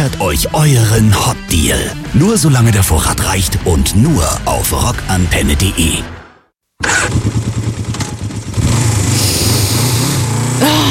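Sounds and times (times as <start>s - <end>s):
speech: 0.1s - 6.2s
motorcycle engine idling and revving: 6.8s - 10.8s.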